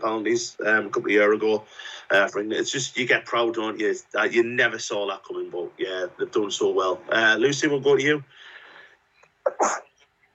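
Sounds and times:
speech: 0.0s - 8.5s, 9.5s - 9.9s
brief breathy intake: 8.3s - 9.0s
single sharp loud sneeze: 9.5s - 9.9s.

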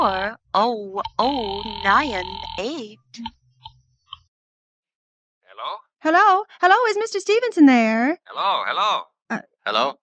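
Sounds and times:
speech: 0.0s - 3.4s, 5.6s - 10.0s
buzzy harmonic telephone ringing tone on the other end of a call: 1.4s - 2.8s.

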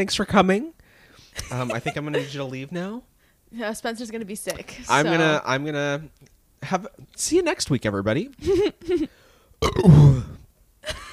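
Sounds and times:
speech: 0.0s - 0.8s, 1.4s - 11.0s
person burping: 9.6s - 10.5s
throaty vocal bursts: 9.6s - 10.5s.

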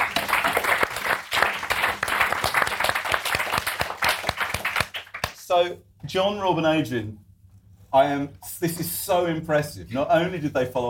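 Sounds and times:
room full of people clapping: 0.0s - 5.4s
speech: 5.5s - 7.2s, 7.9s - 10.8s.

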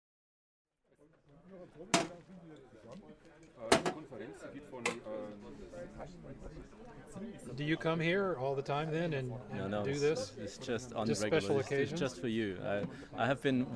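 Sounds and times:
murmur of voices on a city street in Germany: 1.1s - 13.7s
speech: 1.5s - 13.7s
metal compartment door of portable sausage cooker clanking: 2.0s - 2.2s, 3.7s - 4.0s.

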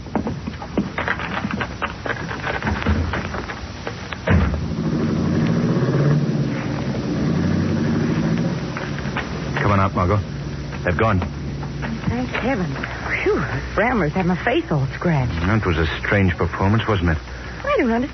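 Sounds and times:
rattling bumping noises: 0.0s - 16.6s
car engine starting and car driving away: 4.2s - 13.7s
speech: 10.0s - 11.4s, 12.4s - 18.1s.

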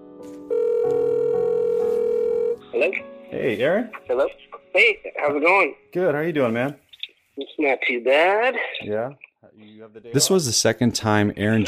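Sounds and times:
phone line ringing on an outgoing call: 0.5s - 2.6s
speech: 2.8s - 6.8s, 7.4s - 11.6s.

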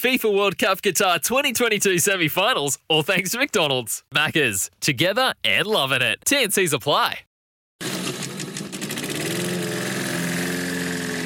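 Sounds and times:
speech: 0.0s - 8.0s
small lawn mower engine starting and running: 7.8s - 11.2s.

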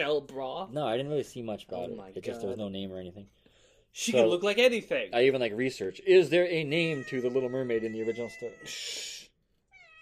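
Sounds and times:
speech: 0.0s - 9.2s
cat meowing loudly: 6.7s - 8.7s, 9.7s - 10.0s.

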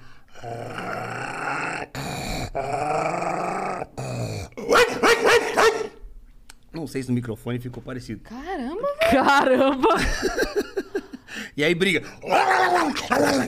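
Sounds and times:
speech: 0.4s - 0.8s, 6.9s - 10.8s, 11.6s - 13.4s
person growling and barking in imitation of a dog: 0.4s - 6.0s, 12.2s - 13.4s
laughter: 9.0s - 11.2s.

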